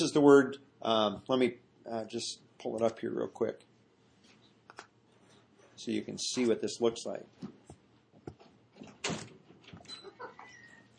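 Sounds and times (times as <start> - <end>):
speech: 0.0 - 3.7, 5.8 - 7.6
door opening: 8.8 - 10.9.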